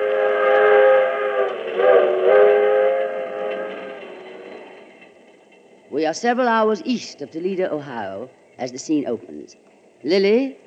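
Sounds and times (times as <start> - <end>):
passenger train whistle multi-tone chord: 0.0 - 4.8
speech: 6.0 - 10.6.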